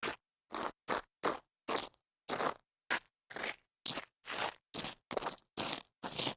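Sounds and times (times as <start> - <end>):
heels scuffing grit: 0.0 - 6.3.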